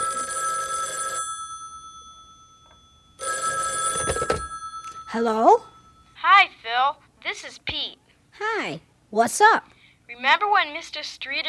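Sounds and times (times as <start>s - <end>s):
telephone ringing: 0.0s - 6.3s
speech: 5.1s - 11.4s.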